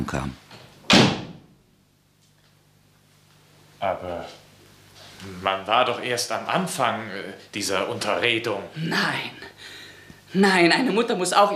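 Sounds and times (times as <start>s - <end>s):
speech: 0.0s - 0.4s, 5.2s - 9.7s, 10.3s - 11.5s
door falling shut: 0.9s - 1.5s.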